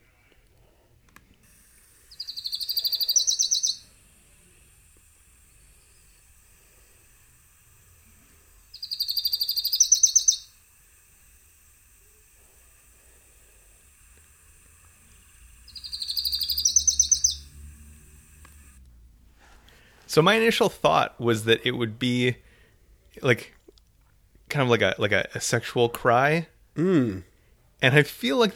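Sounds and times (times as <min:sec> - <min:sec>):
Lucy's Warbler singing bright rapid trilling phrases: 0:02.0 - 0:04.0, 0:08.6 - 0:10.7, 0:15.6 - 0:17.6
speech: 0:20.2 - 0:22.5, 0:23.2 - 0:23.6, 0:24.6 - 0:28.5.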